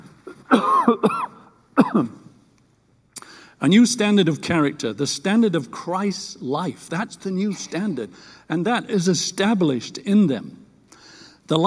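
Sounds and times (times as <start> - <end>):
person coughing: 0.3 - 2.3, 7.5 - 8.0
speech: 0.5 - 1.3, 1.9 - 2.2, 3.6 - 10.6, 11.5 - 11.6.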